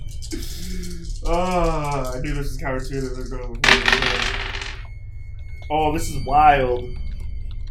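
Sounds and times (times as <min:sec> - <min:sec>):
speech: 0:00.3 - 0:04.4, 0:05.7 - 0:07.1
dice rolled in a game rattling across a table: 0:03.6 - 0:04.8.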